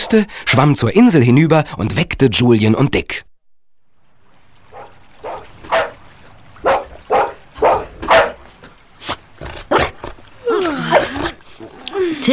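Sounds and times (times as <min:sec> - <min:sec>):
speech: 0:00.1 - 0:03.3, 0:12.2 - 0:12.3
dog barking: 0:04.7 - 0:06.0, 0:06.6 - 0:10.3, 0:10.9 - 0:11.7.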